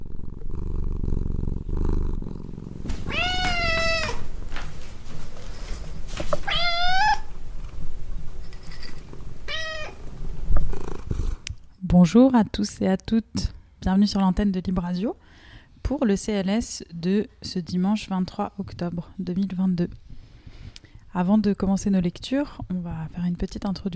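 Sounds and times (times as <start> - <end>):
cat purring: 0.0 - 3.4, 9.1 - 11.6
cat meowing: 3.0 - 4.3, 6.4 - 7.3, 9.5 - 10.0
speech: 12.0 - 20.1, 21.2 - 23.9.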